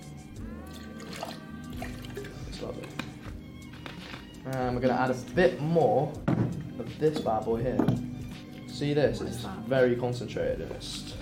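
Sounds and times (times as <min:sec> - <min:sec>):
liquid glugging and trickling as poured from a bottle into a container: 0:00.7 - 0:02.4
speech: 0:04.5 - 0:08.1, 0:08.8 - 0:11.1.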